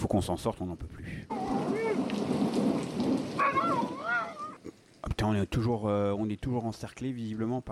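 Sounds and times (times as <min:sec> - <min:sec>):
steady rain falling: 0:00.0 - 0:07.7
speech: 0:00.1 - 0:01.8, 0:05.2 - 0:07.7
thunder-like rumble: 0:01.3 - 0:04.0.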